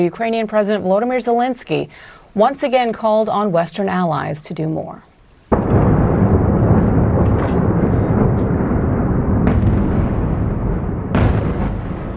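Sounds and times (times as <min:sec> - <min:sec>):
speech: 0:00.0 - 0:05.1
rumble of missile and drone explosions over a city: 0:05.5 - 0:12.1
sharp explosion blast: 0:05.5 - 0:12.1.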